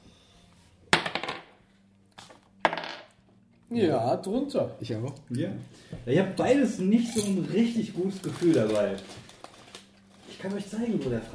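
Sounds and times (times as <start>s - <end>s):
dice rolled during a tabletop role-playing game: 2.6s - 3.1s
speech: 3.7s - 9.3s, 10.4s - 11.3s.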